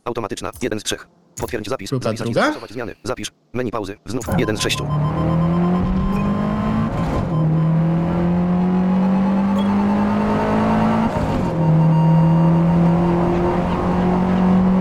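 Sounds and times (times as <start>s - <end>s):
speech: 0.0s - 5.4s
racing-game car engine droning at speed: 4.3s - 14.7s.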